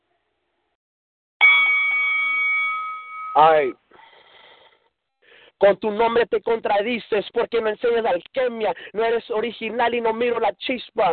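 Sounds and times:
bell strike marking the start of a rap battle round: 0:01.4 - 0:03.7
speech: 0:03.4 - 0:03.9, 0:05.6 - 0:11.1.

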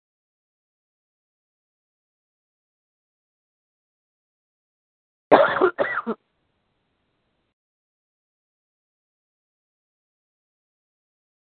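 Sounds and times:
harsh raspy coughs: 0:05.3 - 0:06.2.

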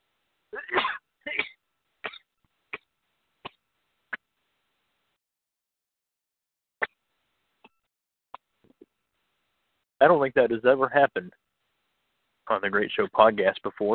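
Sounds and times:
person sneezing: 0:00.6 - 0:02.2
speech: 0:10.0 - 0:11.4, 0:12.5 - 0:13.9.

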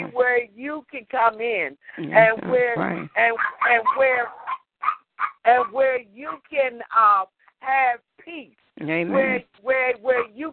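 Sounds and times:
speech: 0:00.2 - 0:04.4, 0:05.4 - 0:10.5
laughter: 0:02.0 - 0:03.0, 0:08.8 - 0:09.4
dog barking in the room: 0:02.9 - 0:06.5, 0:10.1 - 0:10.4.

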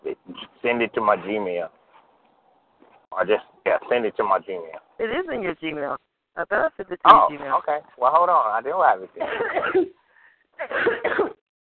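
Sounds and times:
speech: 0:00.6 - 0:01.8, 0:03.2 - 0:10.0
person coughing harshly: 0:09.2 - 0:09.9, 0:10.6 - 0:11.4.

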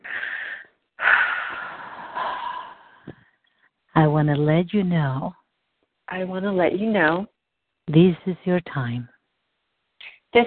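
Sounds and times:
deep breath: 0:00.0 - 0:03.7
speech: 0:04.0 - 0:05.4, 0:06.1 - 0:07.3, 0:07.9 - 0:09.1.

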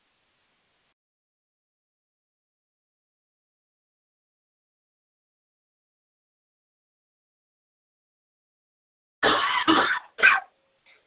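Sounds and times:
person coughing harshly: 0:09.2 - 0:10.5.

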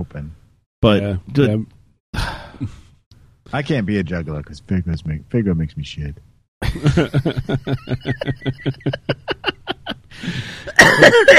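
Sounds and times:
speech: 0:00.0 - 0:02.8, 0:03.5 - 0:11.3
laughter: 0:06.6 - 0:11.3
person coughing: 0:10.6 - 0:11.3.

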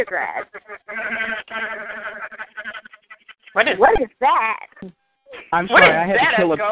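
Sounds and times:
speech: 0:00.0 - 0:02.3, 0:03.6 - 0:06.7
goat bleating: 0:00.0 - 0:03.6.

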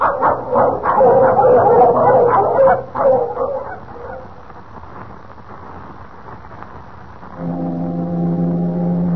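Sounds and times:
pack of sled dogs barking and yelping: 0:00.0 - 0:04.3
low steady horn-like tone: 0:07.4 - 0:09.1.

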